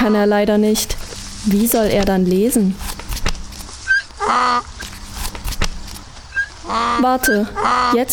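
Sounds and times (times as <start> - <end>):
speech: 0.0 - 2.9, 4.3 - 4.7, 6.7 - 8.1
donkey braying hee-haw: 3.9 - 4.8, 6.3 - 8.1.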